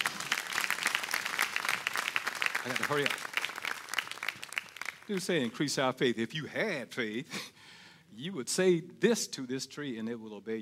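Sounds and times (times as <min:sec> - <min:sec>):
congregation applauding: 0:00.0 - 0:05.8
speech: 0:02.6 - 0:03.3, 0:05.1 - 0:07.6, 0:08.2 - 0:10.5.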